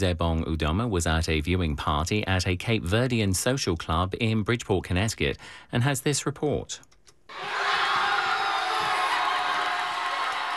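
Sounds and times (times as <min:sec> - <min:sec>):
speech: 0:00.0 - 0:07.6
packed crowd at a social club cheering after a World Cup goal: 0:07.3 - 0:10.5.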